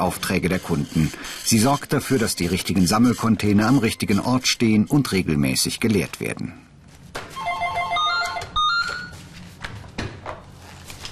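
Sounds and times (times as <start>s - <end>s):
speech: 0.0s - 6.7s
telephone ringing in an office of a waste disposal company: 7.4s - 9.2s.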